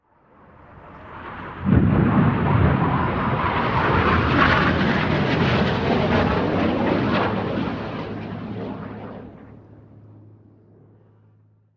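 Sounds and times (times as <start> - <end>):
Hawk jet plane flying overhead: 0.0 - 11.7.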